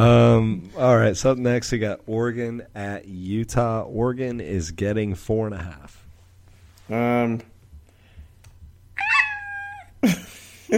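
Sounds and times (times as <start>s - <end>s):
speech: 0.0s - 6.0s, 6.9s - 7.5s, 10.0s - 10.7s
person doing a cat-like imitation of a police siren: 9.0s - 9.9s.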